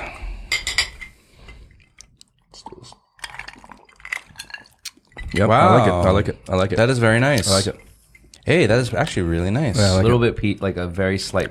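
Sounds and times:
whiskey glasses clinking in a toast: 0.5 - 1.6, 3.2 - 6.1
speech: 5.3 - 7.9, 8.5 - 11.4.

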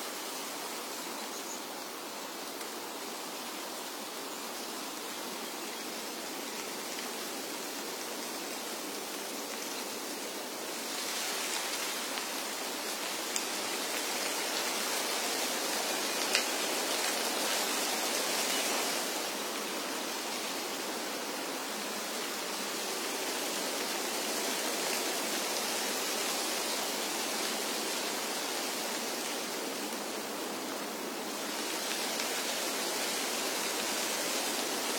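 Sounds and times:
wind rustling through tree leaves: 0.0 - 34.9.

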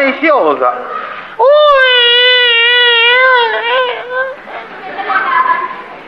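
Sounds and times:
speech: 0.1 - 1.6
voice imitating stylized crying of a female role in Chinese opera: 1.4 - 4.6.

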